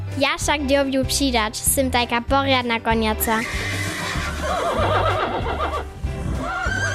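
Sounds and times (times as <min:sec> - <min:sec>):
speech: 0:00.1 - 0:03.8
horse neighing: 0:03.4 - 0:06.9.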